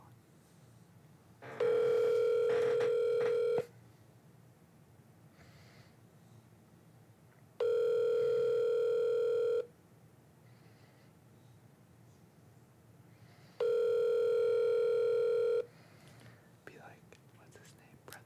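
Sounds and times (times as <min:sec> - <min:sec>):
faint noise: 0:00.0 - 0:18.2
phone ringback tone over speakerphone: 0:01.4 - 0:03.7, 0:07.6 - 0:09.7, 0:13.6 - 0:15.7.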